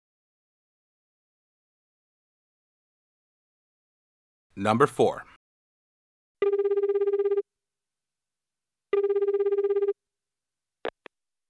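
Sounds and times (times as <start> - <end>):
speech: 4.6 - 5.3
telephone ringing with a warbling electronic trill: 6.4 - 7.4, 8.9 - 10.0.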